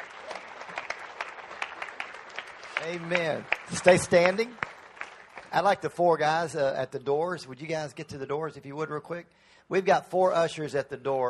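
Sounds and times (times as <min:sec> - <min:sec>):
church congregation clapping hands: 0:00.0 - 0:06.6
speech: 0:02.8 - 0:04.7, 0:05.5 - 0:11.2.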